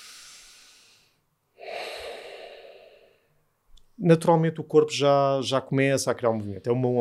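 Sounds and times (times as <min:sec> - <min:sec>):
person breathing deeply in and out: 0:00.0 - 0:03.5
speech: 0:04.0 - 0:06.9.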